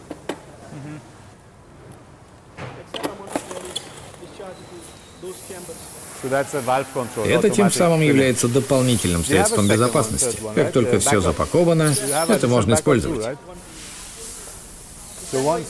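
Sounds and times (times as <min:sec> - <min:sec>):
station inflating a packing bag with air: 0:04.1 - 0:15.6
speech: 0:04.5 - 0:13.7, 0:15.3 - 0:15.6.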